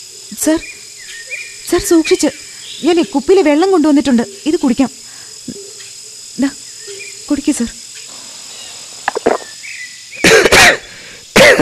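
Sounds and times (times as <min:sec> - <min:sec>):
speech: 0:00.3 - 0:00.8, 0:01.7 - 0:05.6, 0:06.4 - 0:06.6, 0:07.3 - 0:07.8
ailing man coughing: 0:10.2 - 0:11.6.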